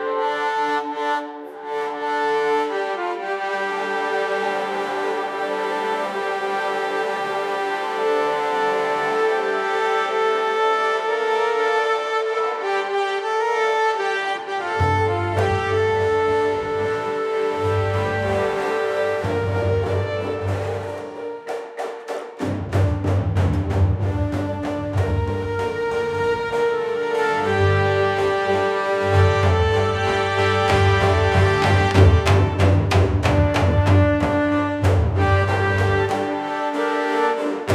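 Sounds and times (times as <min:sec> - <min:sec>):
epic Indian orchestral music: 0:00.0 - 0:37.7.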